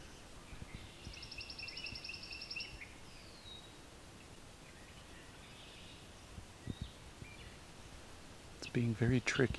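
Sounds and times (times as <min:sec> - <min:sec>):
pine warbler singing a short even trill: 0:00.0 - 0:07.6
soft outdoor noise: 0:00.0 - 0:09.5
speech: 0:08.8 - 0:09.5.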